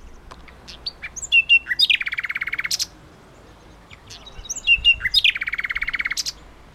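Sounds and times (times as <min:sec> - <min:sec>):
common nightingale Luscinia megarhynchos singing: 0:00.0 - 0:06.7.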